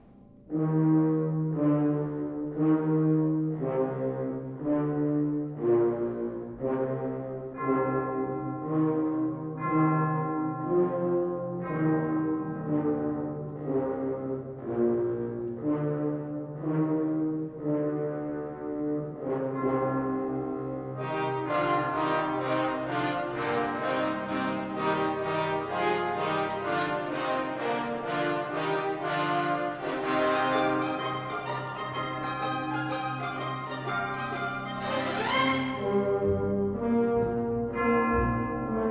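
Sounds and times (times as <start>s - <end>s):
orchestral low brass and woodwinds playing a solemn melody: 0.5s - 38.8s.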